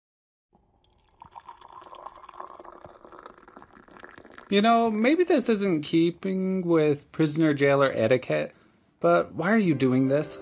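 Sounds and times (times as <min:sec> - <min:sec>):
tea pouring into a cup: 0:00.6 - 0:04.9
speech: 0:04.5 - 0:10.4.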